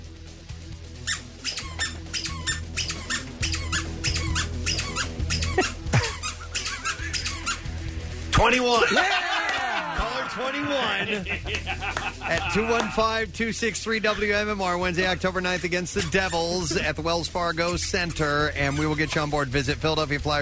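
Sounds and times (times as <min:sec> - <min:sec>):
handheld squeaker squeaking: 0:01.1 - 0:07.7, 0:15.4 - 0:16.9, 0:17.5 - 0:19.6
speech: 0:08.4 - 0:09.3, 0:10.3 - 0:20.4
people chattering and laughing: 0:08.8 - 0:13.0.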